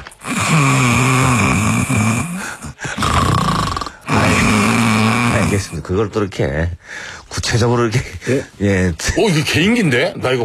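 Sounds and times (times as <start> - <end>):
person imitating rough rattling snoring: 0.2 - 5.8
speech: 5.6 - 10.4.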